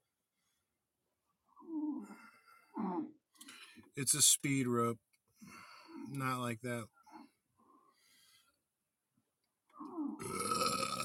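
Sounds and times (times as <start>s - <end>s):
speech: 4.0s - 5.1s, 6.1s - 7.0s
long burp: 10.2s - 11.0s.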